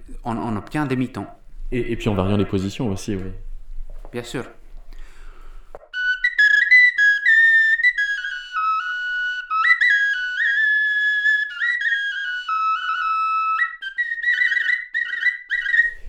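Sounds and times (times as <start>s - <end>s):
speech: 0.2s - 3.4s, 4.1s - 4.6s
bone flute playing a breathy melody: 5.9s - 16.0s.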